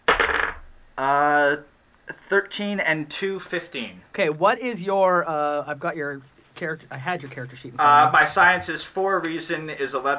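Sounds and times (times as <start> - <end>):
dice rolling and rattling in a dice box: 0.1 - 0.6
speech: 1.0 - 10.1.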